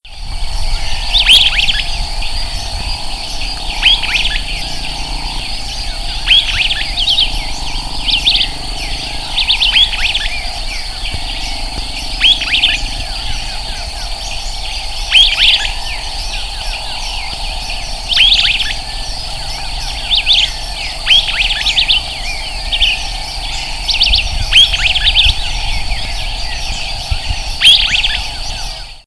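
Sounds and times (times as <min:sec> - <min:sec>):
Myiodynastes maculatus calling: 0:00.1 - 0:29.0.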